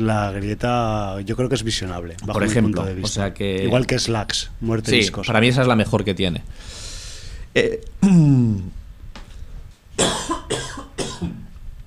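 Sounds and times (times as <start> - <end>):
speech: 0.0 - 6.8, 7.6 - 8.8
person at a microphone coughing after swallowing the wrong way: 10.0 - 11.5.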